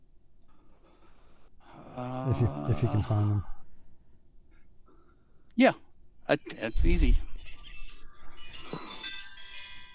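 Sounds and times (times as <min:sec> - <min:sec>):
speech: 0:02.2 - 0:03.6, 0:05.6 - 0:07.3
phone ringtone bright tinny electronic melody: 0:07.2 - 0:09.9.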